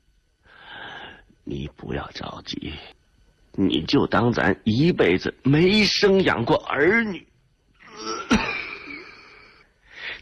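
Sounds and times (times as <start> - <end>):
speech: 1.5 - 3.0, 3.6 - 7.3
man coughing violently and bringing up blood: 8.0 - 8.8.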